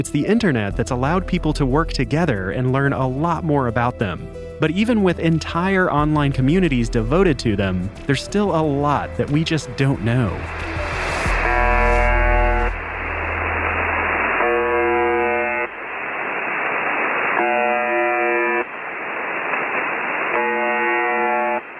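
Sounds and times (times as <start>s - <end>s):
speech: 0.0s - 10.7s
hissing shortwave radio static: 4.6s - 21.7s
harsh droning shortwave radio station buzz: 10.3s - 21.7s.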